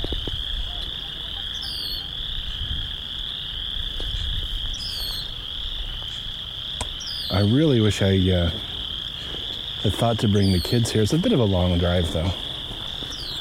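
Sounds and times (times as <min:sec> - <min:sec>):
chorus of frogs croaking in a marsh: 0:00.0 - 0:13.4
low outdoor rumble: 0:00.0 - 0:13.4
speech: 0:07.4 - 0:08.7, 0:09.8 - 0:12.4.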